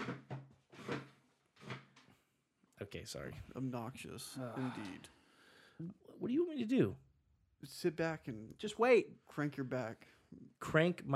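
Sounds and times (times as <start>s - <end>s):
chair dragged across the floor: 0.0s - 2.1s
speech: 2.9s - 5.2s, 5.8s - 7.0s, 7.6s - 11.1s.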